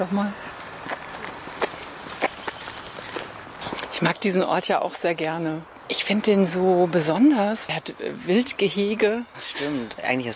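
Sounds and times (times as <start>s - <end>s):
speech: 0.0s - 0.4s, 4.0s - 10.3s
footsteps crunching outdoors at a walking pace: 0.4s - 4.1s.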